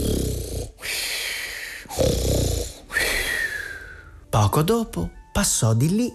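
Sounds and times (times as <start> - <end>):
loud rumbling snoring: 0.0 - 1.0, 1.8 - 3.1
speech: 4.4 - 6.1.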